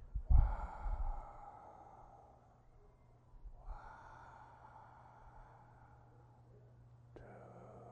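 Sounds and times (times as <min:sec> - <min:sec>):
slow deep breathing, inhaling and exhaling: 0:00.0 - 0:07.9.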